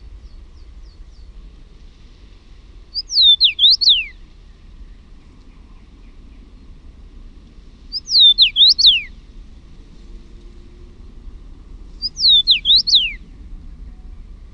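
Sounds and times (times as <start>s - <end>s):
common rosefinch singing a short slurred whistled phrase: 3.0s - 4.2s, 7.9s - 9.1s, 12.0s - 13.2s.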